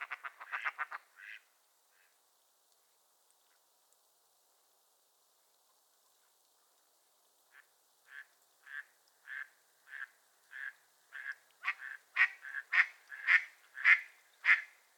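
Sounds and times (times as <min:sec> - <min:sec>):
mallards quacking: 0:00.0 - 0:01.4, 0:08.1 - 0:14.7.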